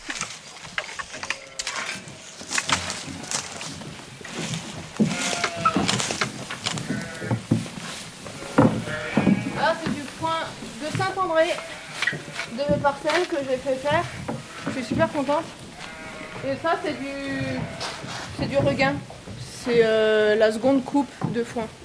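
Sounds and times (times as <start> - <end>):
rustling and shuffling: 0.0 - 21.8
sheep bleating: 1.2 - 3.6, 5.0 - 6.0, 6.7 - 7.5, 8.2 - 19.0
speech: 12.6 - 14.2, 14.8 - 15.6, 16.4 - 17.8, 18.5 - 21.8.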